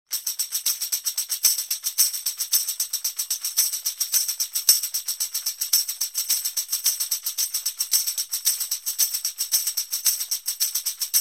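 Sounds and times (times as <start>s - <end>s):
fast rhythm: 0.1s - 11.1s.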